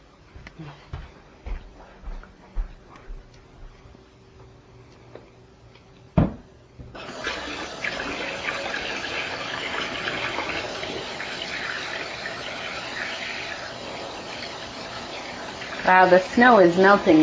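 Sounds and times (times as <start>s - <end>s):
water running from a tap while someone washes their hands: 7.0s - 17.2s
speech: 15.9s - 17.2s.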